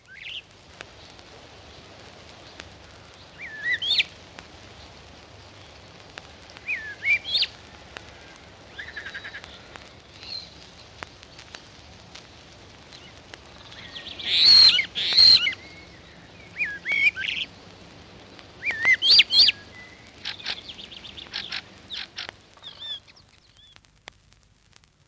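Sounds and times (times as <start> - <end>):
starling mimicking blackbird calls: 0.1 - 1.2, 2.4 - 4.2, 5.6 - 11.8, 12.9 - 17.7, 18.6 - 23.8.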